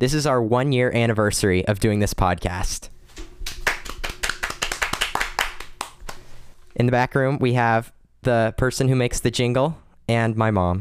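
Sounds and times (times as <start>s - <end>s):
speech: 0.0s - 3.0s, 6.8s - 10.8s
small group clapping hands: 3.2s - 6.3s.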